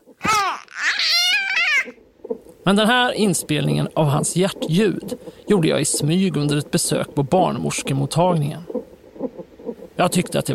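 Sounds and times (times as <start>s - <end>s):
infant boy babbling and cooing: 0.2s - 2.0s
speech: 2.6s - 8.8s, 10.0s - 10.5s.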